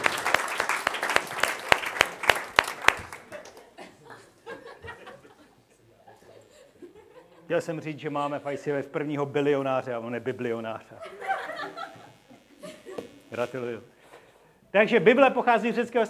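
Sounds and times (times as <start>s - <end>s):
audience applause: 0.0s - 3.6s
audience laughter: 3.5s - 7.5s, 11.0s - 12.8s
speech: 7.5s - 11.2s, 13.4s - 14.0s, 14.7s - 16.0s.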